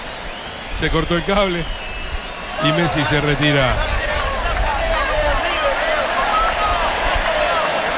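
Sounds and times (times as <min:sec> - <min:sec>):
speech: 0:00.8 - 0:01.8, 0:02.6 - 0:04.0
huge stadium crowd roaring and chanting a name: 0:02.4 - 0:07.9
stadium crowd applause: 0:02.6 - 0:07.9.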